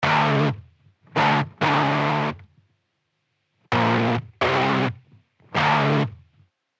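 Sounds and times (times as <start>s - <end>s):
electric guitar through lo-fi tape effect: 0.0s - 2.5s, 3.7s - 6.2s.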